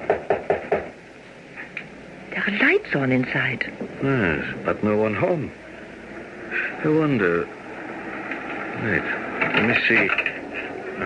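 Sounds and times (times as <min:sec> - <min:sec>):
firm knocks on a wooden door: 0:00.0 - 0:01.0
speech: 0:02.5 - 0:05.6, 0:06.8 - 0:07.6, 0:08.8 - 0:10.2.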